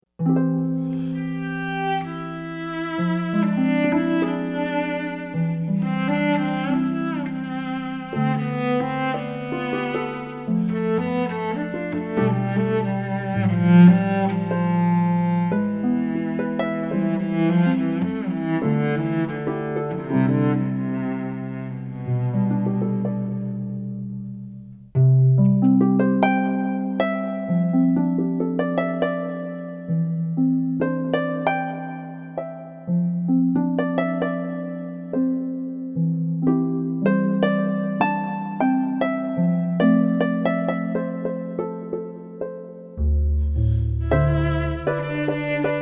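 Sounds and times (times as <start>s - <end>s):
cello: 0.2s - 45.8s.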